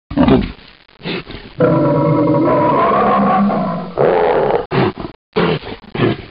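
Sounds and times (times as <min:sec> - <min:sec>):
grizzly bear roaring and growling: 0:01.6 - 0:06.2.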